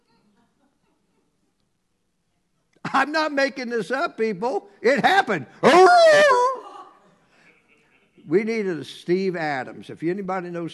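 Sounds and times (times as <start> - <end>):
speech: 2.9 - 6.4, 8.3 - 10.7
person imitating a dog bark: 5.6 - 6.7.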